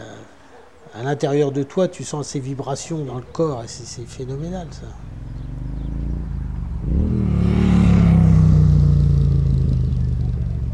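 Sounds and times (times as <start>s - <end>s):
speech: 1.0s - 5.1s
carburetted four-stroke engine decelerating with the throttle closed: 3.2s - 10.7s.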